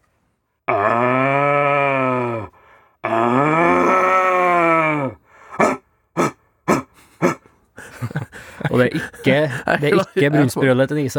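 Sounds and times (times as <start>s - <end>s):
red deer stag roaring: 0.7s - 7.4s
red deer stag grunting barks: 3.6s - 7.5s
laughter: 7.2s - 10.8s
speech: 8.8s - 11.1s.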